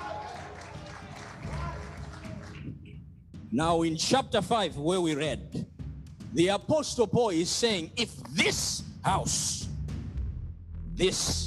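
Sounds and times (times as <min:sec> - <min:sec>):
audience clapping: 0:00.0 - 0:03.0
speech: 0:03.5 - 0:05.6, 0:06.3 - 0:09.7, 0:11.0 - 0:11.4.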